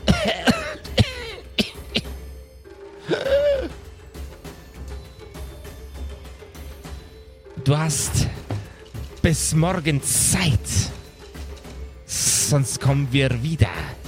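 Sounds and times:
woman coughing: 0.0 - 2.2, 3.1 - 3.7
speech: 7.7 - 8.4, 9.3 - 11.0, 12.5 - 14.0.

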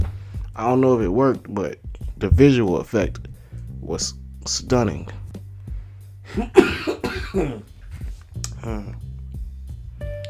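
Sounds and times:
speech: 0.6 - 5.2, 6.3 - 7.7, 8.6 - 9.0
harsh coughing: 6.3 - 7.7
throaty vocal sounds: 8.4 - 9.1.

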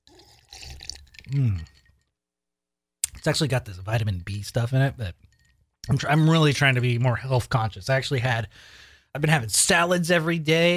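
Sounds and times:
person drinking water: 0.0 - 2.1
short louder voiced gulp or sigh: 0.0 - 2.1
speech: 1.3 - 1.8, 3.2 - 10.7.

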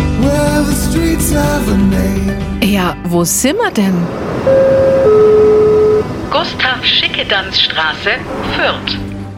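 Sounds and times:
speech: 1.0 - 5.4, 6.4 - 9.0
street noise on Gustav-Schickedanz-Straße in Fürth: 2.7 - 9.3
car horn honking on an inner-city street in Fürth: 4.5 - 6.2.

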